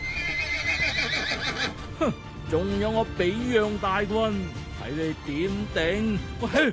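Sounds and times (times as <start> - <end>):
horse neighing as rider pulls back on the reins: 0.0 - 1.9
speech: 2.0 - 6.7.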